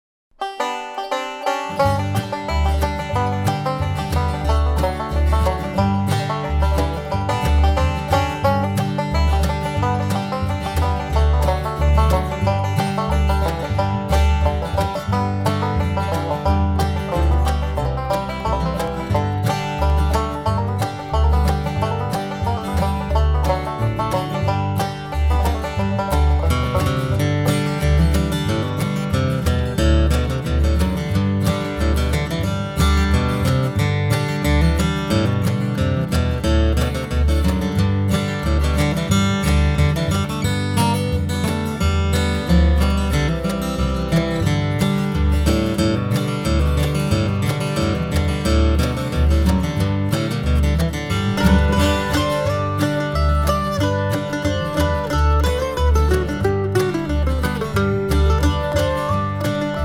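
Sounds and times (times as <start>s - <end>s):
bass in the key of G: 0.3s - 59.8s.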